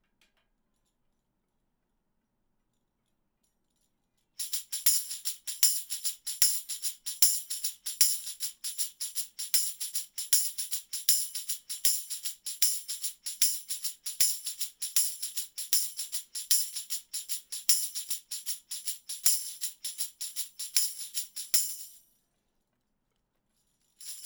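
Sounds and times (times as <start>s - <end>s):
tambourine: 3.8s - 22.2s, 23.7s - 24.2s.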